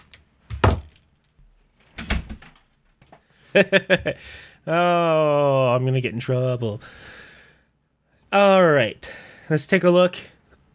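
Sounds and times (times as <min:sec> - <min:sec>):
door being closed: 0:01.9 - 0:02.7
speech: 0:03.6 - 0:07.2, 0:08.3 - 0:10.7.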